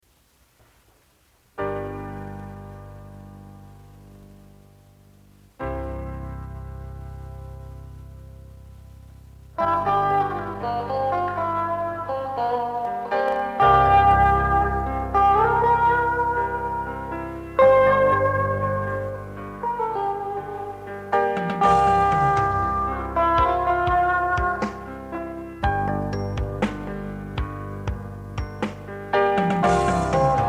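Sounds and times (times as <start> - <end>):
piano: 0.1 - 30.4
guitar intro: 5.6 - 30.4.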